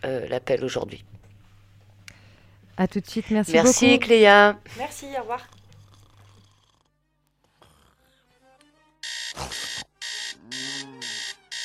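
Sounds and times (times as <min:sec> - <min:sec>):
speech: 0:00.0 - 0:01.2, 0:02.8 - 0:05.6
alarm clock ringing: 0:09.0 - 0:11.6.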